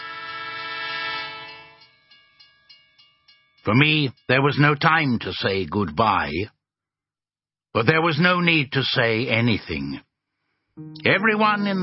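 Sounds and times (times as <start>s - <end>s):
tram horn on the Gran Via in Barcelona: 0.0s - 1.9s
speech: 3.6s - 6.6s, 7.7s - 10.1s, 10.8s - 11.8s.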